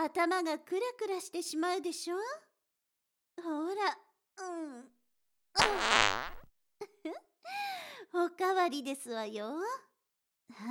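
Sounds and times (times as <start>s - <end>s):
speech: 0.1s - 2.5s, 3.4s - 5.0s, 5.6s - 6.4s, 7.0s - 9.9s, 10.5s - 10.6s
fart released into a cupped hand: 5.6s - 6.5s.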